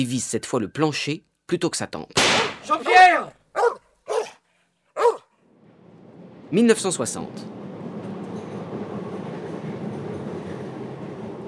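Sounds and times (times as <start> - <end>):
speech: 0.0 - 3.4, 6.5 - 7.6
Paris metro train rumbling along the track: 5.6 - 11.4.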